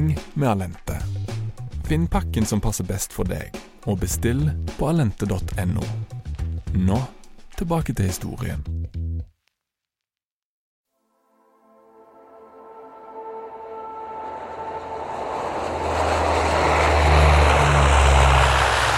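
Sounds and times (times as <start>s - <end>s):
speech: 0.0s - 0.9s, 1.9s - 6.1s, 6.7s - 8.8s
propeller airplane engine droning in flight from Namsos toward Brønnøysund Norway: 12.5s - 18.9s.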